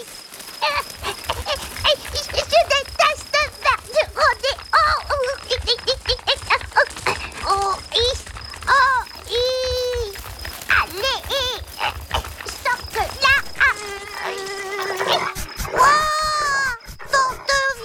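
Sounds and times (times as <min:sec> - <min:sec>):
person making expressive voice sounds, squeaks and sliding vocal tones: 0:00.6 - 0:17.8
thin high-pitched mosquito whine: 0:13.6 - 0:17.0.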